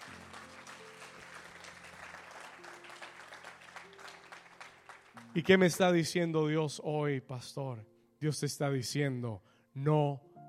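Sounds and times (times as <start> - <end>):
congregation applauding: 0.0 - 5.6
speech: 5.4 - 10.3.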